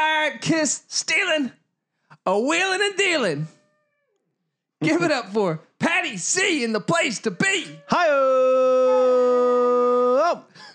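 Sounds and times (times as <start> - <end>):
speech: 0.4 - 1.6, 2.2 - 3.6, 4.8 - 9.6
dog whining: 7.4 - 8.1, 8.7 - 9.6
dog howling: 7.4 - 10.1.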